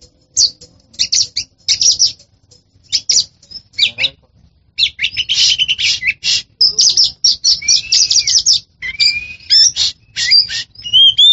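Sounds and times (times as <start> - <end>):
Oriental magpie-robin singing: 0.0 - 11.3.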